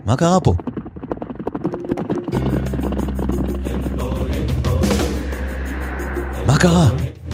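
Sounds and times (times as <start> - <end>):
speech: 0.1 - 0.8, 6.5 - 7.0
helicopter flying overhead with rotor chop: 1.3 - 6.8.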